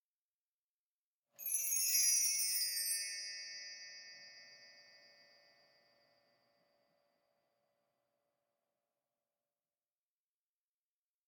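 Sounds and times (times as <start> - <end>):
short wind chime: 1.4 - 7.5.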